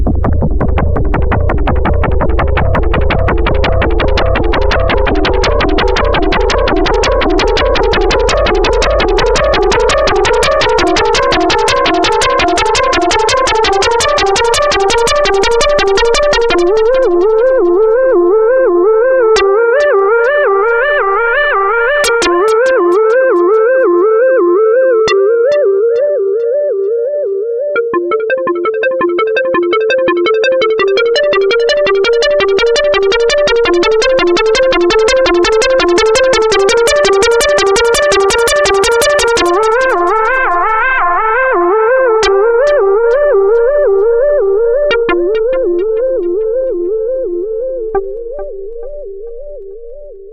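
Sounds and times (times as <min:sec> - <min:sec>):
sineshaper synthesizer tone: 0:00.1 - 0:50.3.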